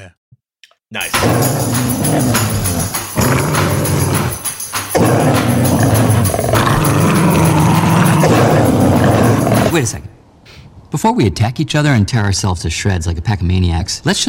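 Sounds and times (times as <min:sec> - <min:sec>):
speech: 0:00.9 - 0:03.5, 0:09.8 - 0:10.2, 0:10.9 - 0:14.2
several dogs barking, growling and snarling at each other: 0:01.2 - 0:09.8.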